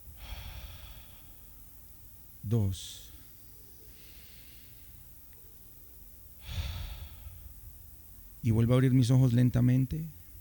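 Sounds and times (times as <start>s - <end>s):
slow deep breath during a calm relaxation exercise: 0.0s - 2.1s, 3.1s - 5.3s, 6.3s - 8.3s
speech: 2.4s - 3.1s, 8.4s - 10.2s.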